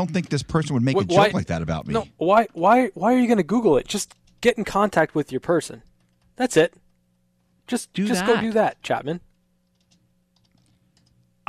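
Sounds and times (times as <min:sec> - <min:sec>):
speech: 0:00.0 - 0:06.8, 0:07.7 - 0:09.3
low steady electrical hum: 0:00.0 - 0:11.4
someone typing hard on a computer keyboard: 0:09.6 - 0:11.3.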